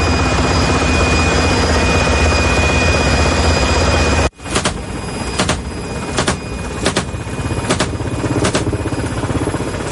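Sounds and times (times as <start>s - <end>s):
military helicopter engine and rotor roar in flight over Ukraine: 0.0s - 9.9s
military helicopter rhythmic repeating blade thumps: 5.4s - 8.8s.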